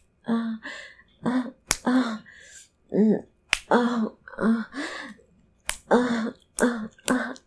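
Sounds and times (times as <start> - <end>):
breathy moaning vocalizations: 0.2 - 5.2, 5.9 - 7.4
wet slaps on skin: 1.7 - 1.9, 3.5 - 3.7, 5.7 - 5.9.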